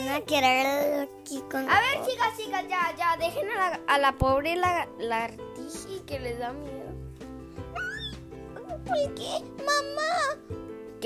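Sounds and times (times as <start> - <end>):
speech: 0.2 - 6.9, 8.9 - 11.0
young female cats meowing: 7.7 - 8.9.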